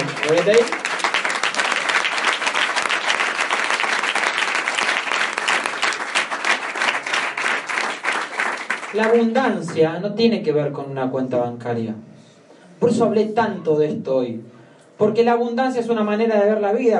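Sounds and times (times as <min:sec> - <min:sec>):
crowd applause: 0:00.0 - 0:09.4
speech: 0:00.3 - 0:00.8, 0:09.0 - 0:12.1, 0:12.8 - 0:16.9.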